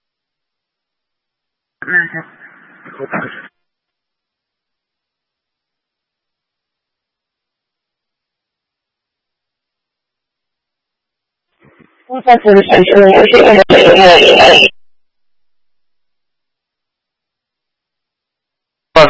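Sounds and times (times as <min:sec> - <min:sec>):
garbled distorted voice in radio noise: 0:01.8 - 0:03.5, 0:11.6 - 0:14.8
loud crackling radio static: 0:01.8 - 0:03.6, 0:11.6 - 0:14.8
speech: 0:01.9 - 0:03.5, 0:12.2 - 0:14.8.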